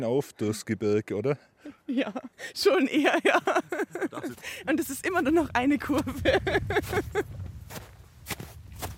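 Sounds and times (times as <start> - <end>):
speech: 0.0 - 7.9
laughter: 1.9 - 4.6, 5.9 - 7.3
footsteps in wet slushy snow on a mountain hike: 5.8 - 8.9.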